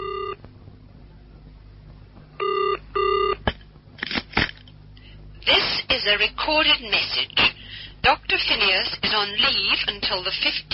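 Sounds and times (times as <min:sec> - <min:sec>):
telephone ringing tone in short electronic bursts: 0:00.0 - 0:00.4, 0:02.4 - 0:03.4
speech: 0:06.0 - 0:10.7.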